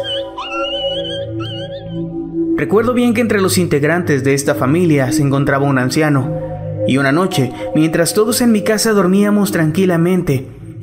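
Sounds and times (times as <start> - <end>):
dog howling: 0.0 - 2.5
speech: 2.6 - 10.6.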